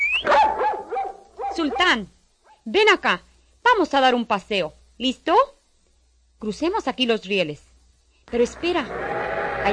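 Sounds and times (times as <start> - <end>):
dog yapping high-pitched: 0.2 - 1.9
dog barking loud and rough: 0.3 - 2.6
speech: 1.6 - 5.6, 6.4 - 7.7, 8.3 - 9.6.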